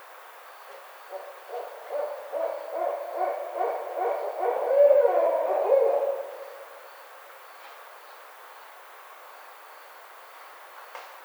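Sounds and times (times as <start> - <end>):
barred owl hooting: 1.1 - 6.7.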